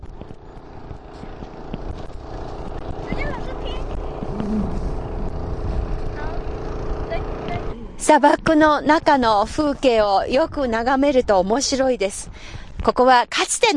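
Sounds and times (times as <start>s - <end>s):
steady low engine drone: 0.0s - 10.5s
speech: 8.1s - 13.7s.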